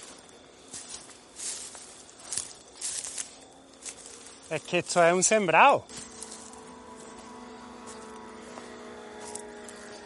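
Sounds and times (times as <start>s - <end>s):
distant cars passing on a highway: 0.0s - 10.0s
speech: 4.5s - 6.0s.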